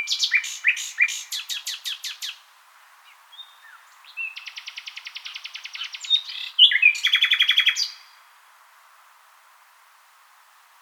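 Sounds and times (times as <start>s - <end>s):
common nightingale song: 0.0s - 8.2s.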